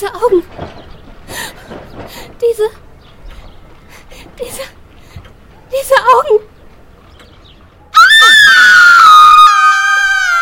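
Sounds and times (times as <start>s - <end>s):
speech: 0.0s - 0.5s
woman screaming: 8.0s - 10.4s.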